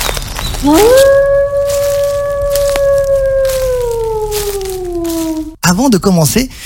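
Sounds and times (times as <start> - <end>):
soft patter: 0.0 - 5.6
speech: 0.6 - 1.2, 5.7 - 6.6
gray wolf howling: 0.6 - 5.6.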